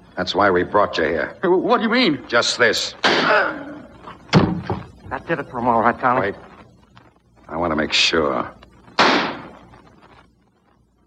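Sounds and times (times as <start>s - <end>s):
speech: 0.2s - 3.6s, 5.1s - 6.5s, 7.5s - 8.6s
gunshot fired at a man inside an empty house: 3.0s - 3.5s, 9.0s - 9.6s.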